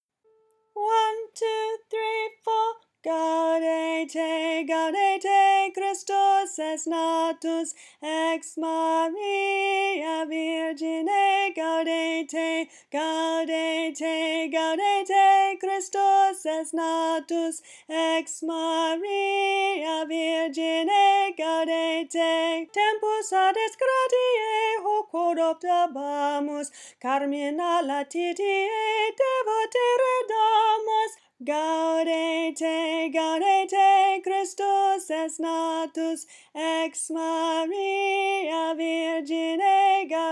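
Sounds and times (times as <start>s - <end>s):
alto voice singing: 0.7s - 40.3s.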